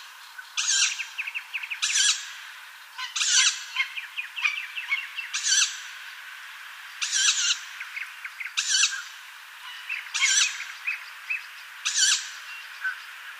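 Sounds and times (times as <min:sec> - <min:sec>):
tawny owl chicks giving harsh hissing screeches: 0:00.6 - 0:02.3, 0:03.0 - 0:05.8, 0:07.0 - 0:13.0.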